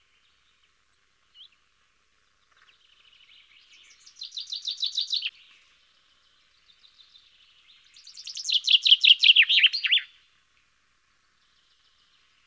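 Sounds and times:
common chaffinch Fringilla coelebs song: 0.0 - 12.4.

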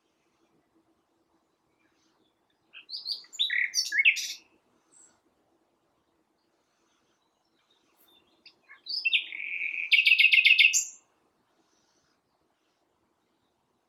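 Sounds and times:
common nightingale Luscinia megarhynchos singing: 1.6 - 5.1, 7.3 - 11.1.

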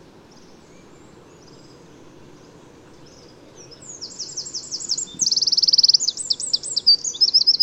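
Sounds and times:
Eurasian wren Troglodytes troglodytes song with twittering and rattling trill: 0.3 - 7.6.

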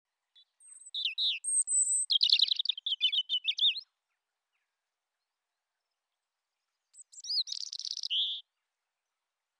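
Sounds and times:
European robin singing: 0.3 - 3.9, 6.9 - 8.5.

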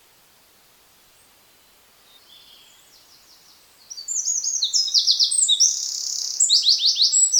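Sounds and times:
Eurasian wren Troglodytes troglodytes singing: 3.9 - 7.3.

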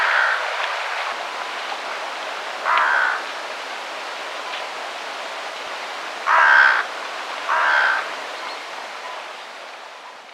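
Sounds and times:
carrion crow Corvus corone cawing: 0.0 - 0.5, 2.6 - 3.3, 6.3 - 6.9, 7.5 - 8.1
steady background hiss: 0.0 - 10.3.

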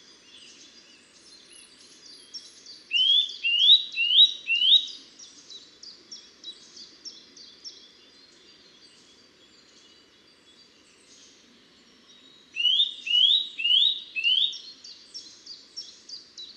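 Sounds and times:
Eurasian nuthatch Sitta europaea calling: 2.9 - 5.0, 12.6 - 14.7.

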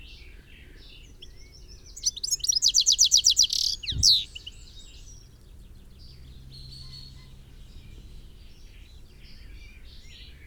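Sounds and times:
European goldfinch Carduelis carduelis twittering: 1.2 - 4.8.

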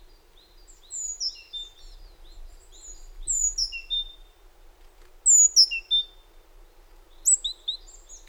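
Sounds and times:
Great tit Parus major whistled calls: 0.5 - 2.0, 2.7 - 4.2, 5.2 - 6.2, 7.2 - 8.2.

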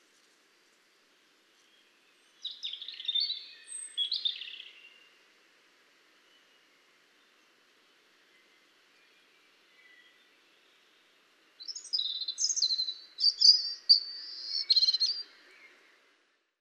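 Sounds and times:
faint background hiss: 0.0 - 16.5
European robin singing, Erithacus rubecula: 2.4 - 5.0, 11.6 - 15.8.

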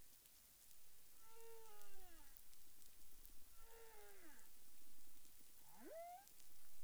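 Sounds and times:
humpback whale calls: 1.2 - 6.3.

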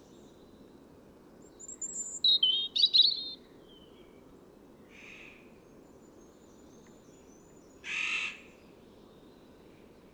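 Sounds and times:
European robin Erithacus rubecula singing: 1.6 - 3.4.

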